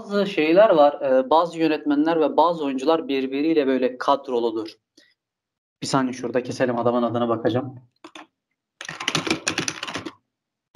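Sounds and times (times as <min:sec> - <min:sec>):
speech: 0:00.1 - 0:04.8, 0:05.8 - 0:08.2
rapid typing on a computer keyboard: 0:08.0 - 0:08.2, 0:08.8 - 0:10.2.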